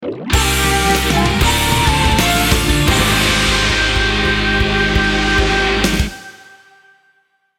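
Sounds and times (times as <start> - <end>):
video game over background music: 0.7 - 6.2.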